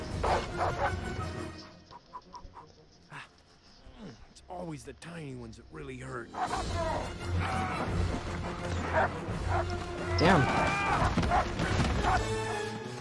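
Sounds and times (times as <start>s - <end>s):
alpha wolf barking and snarling: 0.2s - 1.1s, 6.3s - 10.0s, 10.9s - 12.6s
speech: 4.7s - 12.8s.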